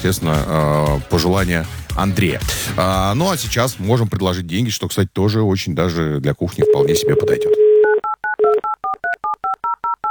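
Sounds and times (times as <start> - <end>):
speech: 0.0 - 7.6
telephone number dialed on a touch-tone keypad: 6.6 - 10.0.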